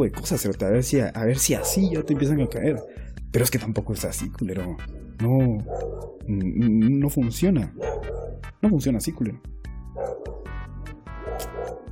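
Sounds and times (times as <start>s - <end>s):
speech: 0.0s - 10.3s
dog barking: 1.4s - 3.0s, 5.6s - 6.3s, 7.8s - 8.4s, 10.0s - 10.6s, 11.2s - 11.9s.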